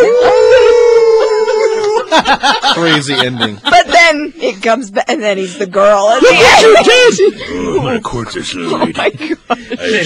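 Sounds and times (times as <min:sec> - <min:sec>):
wolf howling: 0:00.0 - 0:02.0
laughter: 0:00.0 - 0:04.2, 0:06.2 - 0:07.7, 0:08.6 - 0:10.0
speech: 0:02.2 - 0:10.0.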